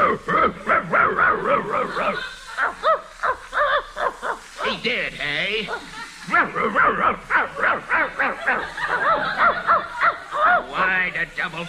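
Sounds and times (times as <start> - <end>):
man imitating dog yips and short barks: 0.0 - 2.2, 2.9 - 4.9, 5.5 - 8.6
laughter: 0.0 - 11.6.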